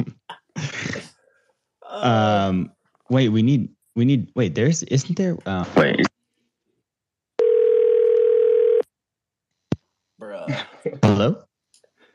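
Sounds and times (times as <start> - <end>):
speech: 2.0 - 6.1, 10.4 - 11.4
steady loud telephone dial tone: 7.4 - 8.8.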